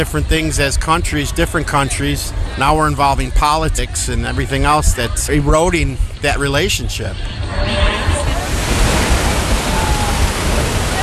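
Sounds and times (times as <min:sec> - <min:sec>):
speech: 0:00.0 - 0:08.1
waterfall roaring: 0:07.8 - 0:11.0.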